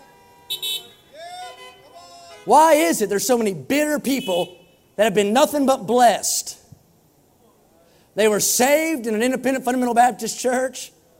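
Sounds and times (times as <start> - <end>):
brassy car horn honking: 0.0 - 2.9, 4.0 - 5.0
speech: 2.4 - 6.6, 8.2 - 11.0.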